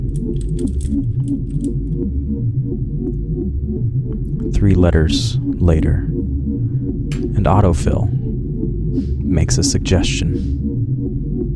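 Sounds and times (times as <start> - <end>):
typing a search on a computer keyboard: 0.0 - 2.0
steady low hum: 0.0 - 11.5
speech: 0.3 - 8.2, 8.9 - 10.6.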